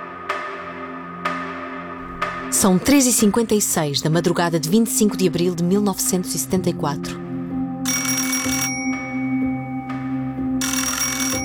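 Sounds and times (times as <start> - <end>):
speech: 2.5 - 7.3
old-style telephone bell ringing: 7.8 - 11.4.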